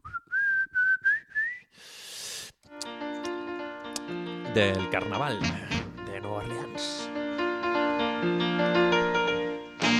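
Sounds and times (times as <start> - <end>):
whistled melody in a New Orleans song: 0.0 - 1.7
upbeat New Orleans band music with piano: 2.9 - 9.9
speech: 4.5 - 7.1, 8.2 - 9.0.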